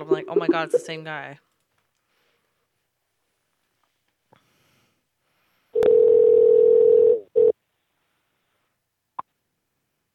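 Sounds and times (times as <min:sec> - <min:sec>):
speech: 0:00.1 - 0:01.5
phone call steady electronic ringing tone: 0:05.8 - 0:07.6.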